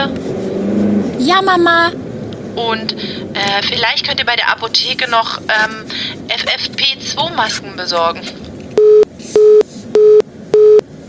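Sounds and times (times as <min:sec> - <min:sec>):
speech: 0:01.3 - 0:02.0, 0:02.6 - 0:09.6
telephone busy tone beeps after a call drops for lack of network: 0:08.8 - 0:11.0.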